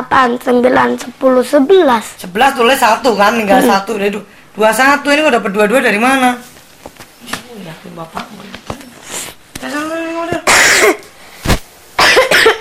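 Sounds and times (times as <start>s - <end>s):
speech: 0.0s - 6.5s, 7.2s - 8.6s
harsh explosive coughing: 10.4s - 11.0s, 12.0s - 12.6s.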